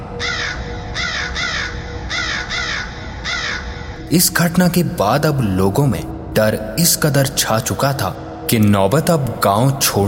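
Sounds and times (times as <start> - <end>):
crows cawing in harsh rasping bursts in a village in the morning: 0.1 - 4.1
speech: 4.1 - 10.0.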